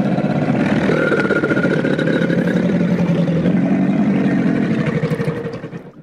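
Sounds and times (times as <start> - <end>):
alligator bellowing: 0.0 - 6.0.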